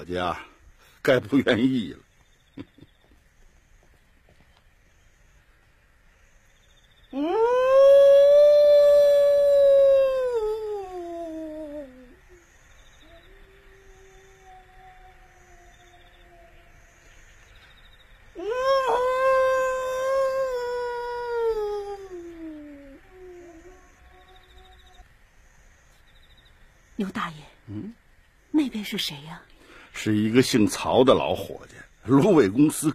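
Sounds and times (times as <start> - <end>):
speech: 0.1 - 2.0, 2.6 - 2.8, 7.1 - 8.0, 28.9 - 32.9
person imitating a wolf howl: 7.1 - 16.8, 18.4 - 25.1.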